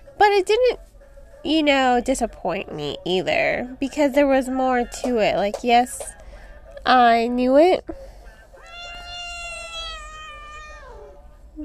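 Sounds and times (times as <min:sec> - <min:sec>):
speech: 0:00.4 - 0:06.2, 0:06.8 - 0:08.1
domestic cat meowing for attention: 0:08.6 - 0:11.2.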